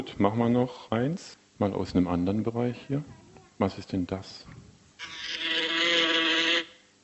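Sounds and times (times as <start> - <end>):
speech: 0.0 - 5.2
fly buzzing: 5.0 - 6.8.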